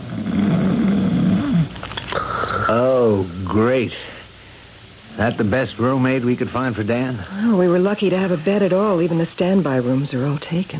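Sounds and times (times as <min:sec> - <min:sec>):
big heavily muscled middle-aged man snoring loudly in a bed: 0:00.0 - 0:02.8
quiet breathing: 0:01.4 - 0:02.8, 0:03.9 - 0:05.0
speech: 0:02.7 - 0:04.1, 0:05.2 - 0:10.7.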